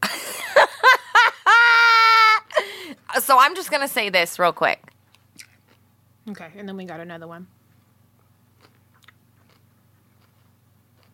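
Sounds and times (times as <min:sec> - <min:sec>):
steady low electrical hum: 0:00.0 - 0:11.1
speech: 0:03.3 - 0:05.5, 0:06.3 - 0:07.6
chewing and crunching food: 0:04.9 - 0:05.9, 0:07.7 - 0:11.1.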